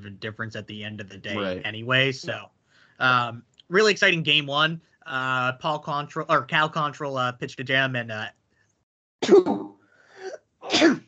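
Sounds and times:
speech: 0.0 - 8.4, 9.2 - 9.7, 10.7 - 11.0
person sneezing: 1.3 - 1.6, 10.2 - 11.0.

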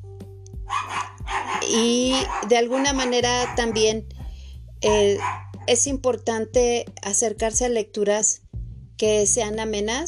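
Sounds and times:
small pet dogs barking: 0.7 - 4.0, 4.9 - 5.8
speech: 1.7 - 4.1, 4.8 - 8.4, 9.0 - 10.0.

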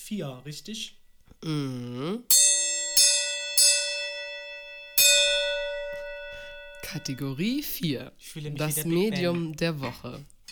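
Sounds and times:
speech: 0.1 - 2.5, 6.9 - 10.4
gong struck as a segment jingle: 2.3 - 7.8.

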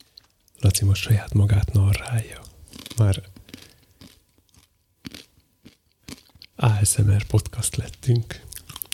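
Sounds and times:
speech: 0.6 - 3.3, 6.8 - 8.5
crisp crunching of bites on roasted beetroot with sea salt: 2.4 - 6.5, 8.5 - 8.9.

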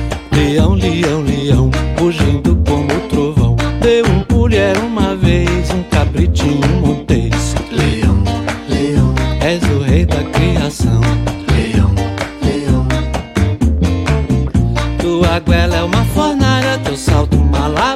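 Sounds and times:
Brazilian popular song with male singer: 0.1 - 17.9.

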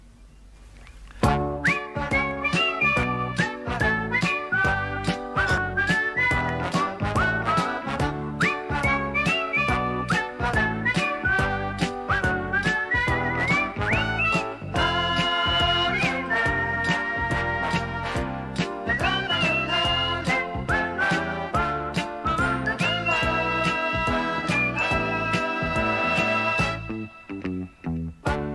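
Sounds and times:
steady rhythmic musical backing: 1.2 - 28.5
whistled tune: 1.4 - 28.1.

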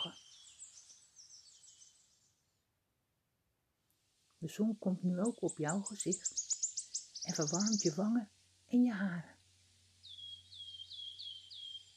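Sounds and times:
small bird singing a bright repeated phrase: 0.0 - 2.4, 4.4 - 8.3, 9.9 - 11.9
speech: 4.4 - 6.5, 7.3 - 9.4.

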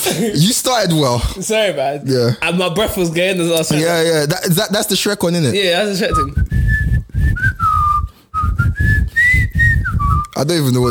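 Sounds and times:
speech: 0.0 - 6.7, 10.4 - 10.8
person whistling a short melody: 6.1 - 10.4.

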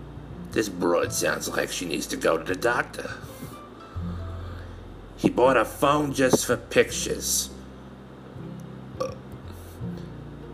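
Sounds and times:
speech: 0.5 - 3.5, 5.2 - 7.6
faint low belch after eating penne alla vodka: 9.0 - 9.2.

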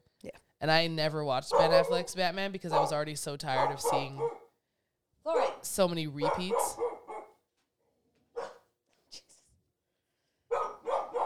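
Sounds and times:
speech: 0.6 - 4.4, 5.3 - 6.8
dog barking outdoors in the country: 1.5 - 4.5, 5.3 - 7.4, 8.3 - 8.7, 10.5 - 11.2.

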